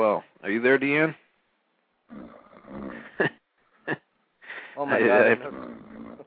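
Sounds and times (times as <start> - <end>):
speech: 0.0 - 1.2, 2.1 - 4.0, 4.8 - 5.8
person snoring and snorting: 2.1 - 3.2, 5.0 - 6.2.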